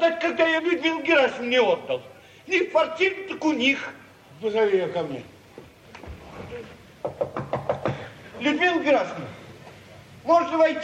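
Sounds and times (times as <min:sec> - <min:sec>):
speech: 0:00.0 - 0:05.4, 0:08.4 - 0:09.4, 0:10.2 - 0:10.8
low sound: 0:00.0 - 0:10.8
knocking on a door: 0:07.0 - 0:08.1.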